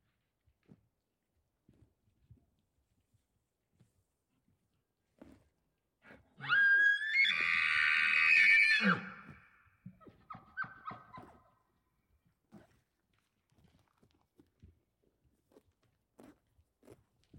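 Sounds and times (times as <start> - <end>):
bull elk scream in rutting season: 6.4 - 9.4.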